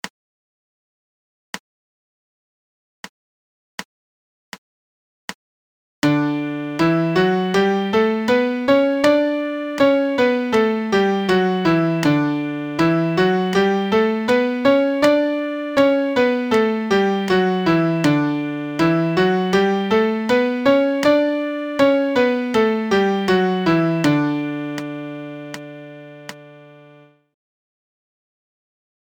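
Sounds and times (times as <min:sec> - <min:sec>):
MIDI major scale in D: 0:06.0 - 0:27.2.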